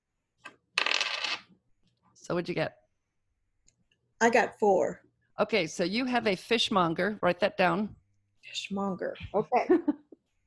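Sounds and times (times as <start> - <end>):
dice rattling across a hard surface: 0.8 - 1.5
speech: 2.3 - 2.8, 4.2 - 10.0.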